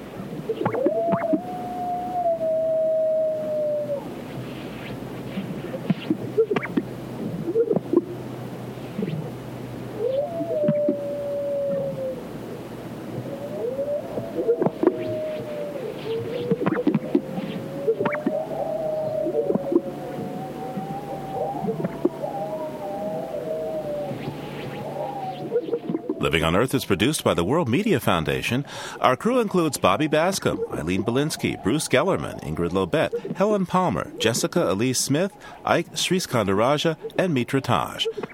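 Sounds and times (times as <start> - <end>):
greater sage grouse calls in arid sagebrush in California's Great Basin: 0.0 - 8.2, 8.8 - 9.3, 10.0 - 12.2, 13.1 - 27.1, 28.6 - 38.3
faint steady low hum: 0.0 - 38.3
coyote howls in arid sagebrush in California's Great Basin: 0.5 - 4.1, 9.9 - 27.1, 29.6 - 33.4
speech: 26.5 - 38.2.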